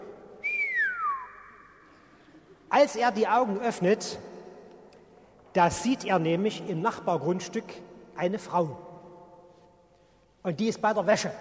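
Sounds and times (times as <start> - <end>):
person imitating an appreciative whistle: 0.4 - 1.8
speech: 2.8 - 4.3, 5.6 - 8.9, 10.4 - 11.3.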